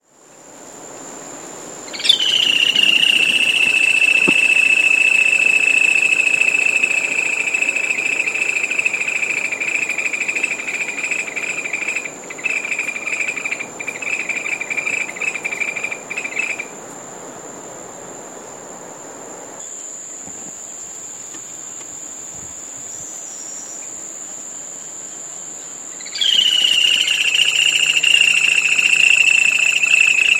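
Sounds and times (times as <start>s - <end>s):
Laterallus viridis calling: 1.8s - 16.7s, 26.0s - 30.3s.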